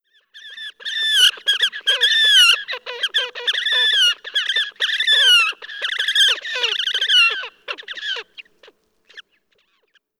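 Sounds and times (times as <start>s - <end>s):
horned grebe calling: 0.8s - 8.4s.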